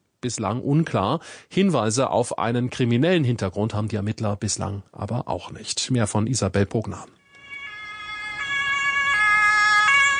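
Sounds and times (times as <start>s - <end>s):
speech: 0.2s - 7.2s
emergency vehicle siren wailing: 7.2s - 10.1s.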